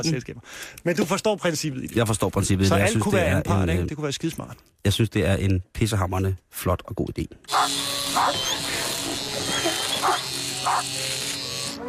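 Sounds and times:
speech: 0:00.0 - 0:08.6
dog barking: 0:07.5 - 0:08.5, 0:09.6 - 0:10.9
electric clipper buzzing while shaving a dog: 0:07.5 - 0:11.8.

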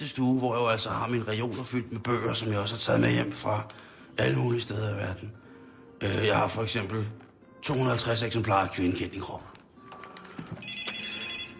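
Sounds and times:
speech: 0:00.0 - 0:05.4, 0:06.0 - 0:09.5
noise: 0:00.0 - 0:11.5
telephone ringing with electronic ringtone: 0:10.3 - 0:11.5.

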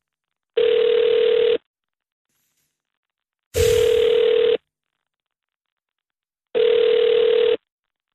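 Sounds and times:
foreign telephone ringing tone when calling abroad: 0:00.6 - 0:01.6, 0:03.8 - 0:04.6, 0:06.6 - 0:07.6.

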